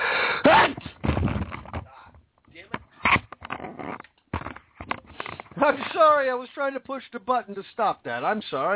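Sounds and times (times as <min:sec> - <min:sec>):
person sneezing loudly: 0:00.2 - 0:01.0
speech: 0:05.6 - 0:08.7.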